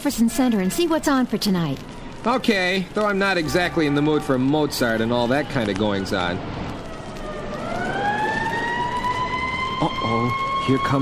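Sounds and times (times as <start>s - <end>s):
speech: 0.0s - 6.6s, 9.8s - 10.9s
road traffic rumble: 0.0s - 10.9s
police siren wailing: 1.8s - 10.9s.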